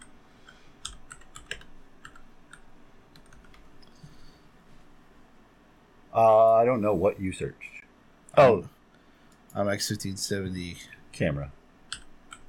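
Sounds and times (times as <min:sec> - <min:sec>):
low hum: 0:00.0 - 0:12.4
typing on a computer keyboard: 0:00.8 - 0:03.6, 0:11.9 - 0:12.4
speech: 0:06.2 - 0:07.8, 0:08.4 - 0:08.8, 0:09.5 - 0:11.6.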